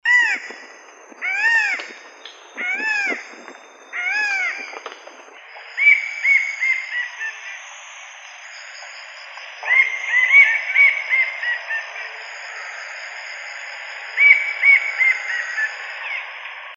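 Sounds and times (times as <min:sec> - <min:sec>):
sombre kingfisher calling: 0:00.1 - 0:07.7, 0:09.6 - 0:12.7, 0:14.1 - 0:16.3.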